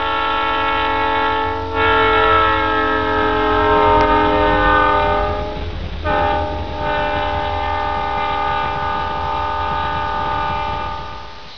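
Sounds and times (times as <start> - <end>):
train passing slowly recorded on a Motorola MPX200: 0.0 - 11.5.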